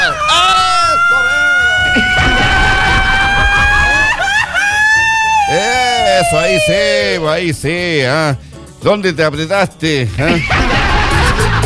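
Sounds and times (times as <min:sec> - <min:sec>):
loud Mexican ranchero grito yell: 0:00.0 - 0:04.2, 0:04.8 - 0:07.4
laughter: 0:01.4 - 0:07.2, 0:10.2 - 0:11.6
speech: 0:06.3 - 0:10.7.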